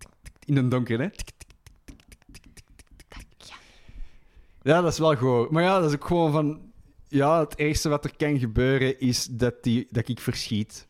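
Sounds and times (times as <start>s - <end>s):
voice imitating critter scuttling across laminate floor: 0.0s - 3.6s
speech: 0.5s - 1.3s, 4.6s - 10.8s.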